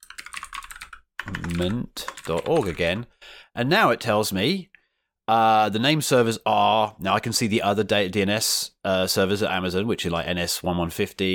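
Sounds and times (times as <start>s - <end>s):
rapid computer keyboard typing: 0.0s - 3.0s
speech: 1.6s - 4.7s, 5.3s - 11.3s.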